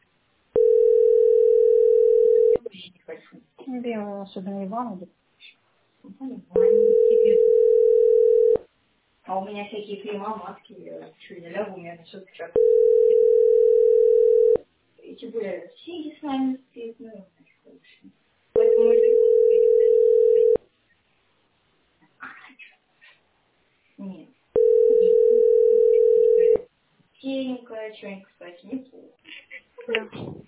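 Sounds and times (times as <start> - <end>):
telephone ringing tone: 0.6 - 2.6, 6.6 - 8.6, 12.6 - 14.6, 18.6 - 20.6, 24.6 - 26.6
speech: 3.8 - 5.2, 6.0 - 8.0, 9.3 - 13.6, 15.2 - 18.2, 24.0 - 24.4, 27.2 - 29.2, 29.8 - 30.4.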